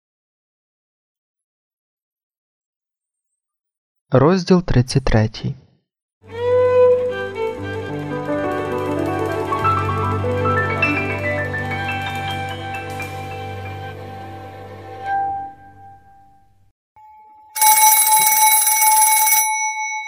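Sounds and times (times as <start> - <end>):
speech: 4.1 - 5.6
sustained tonal music: 6.3 - 16.1
telephone bell ringing: 17.0 - 20.0.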